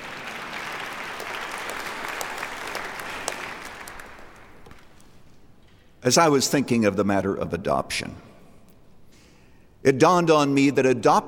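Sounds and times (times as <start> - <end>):
room full of people clapping: 0.0 - 5.0
speech: 6.0 - 8.3, 9.8 - 11.2.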